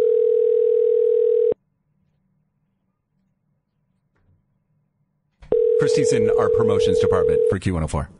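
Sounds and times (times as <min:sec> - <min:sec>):
electronic ringback tone through a phone line: 0:00.0 - 0:01.6, 0:05.5 - 0:07.6
speech: 0:05.8 - 0:08.1.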